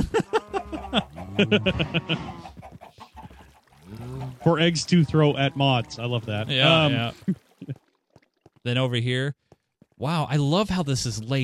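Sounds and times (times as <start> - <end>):
laughter: 0.0 - 2.6, 3.9 - 7.8
chickens clucking and squawking in a farm pen: 0.3 - 7.1
speech: 0.9 - 2.4, 4.4 - 7.4, 8.6 - 9.4, 10.0 - 11.4.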